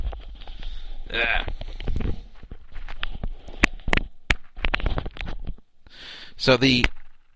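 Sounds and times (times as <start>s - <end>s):
microphone handling noise after the mic is dropped: 0.0s - 5.7s
speech: 1.1s - 1.5s, 6.4s - 7.0s.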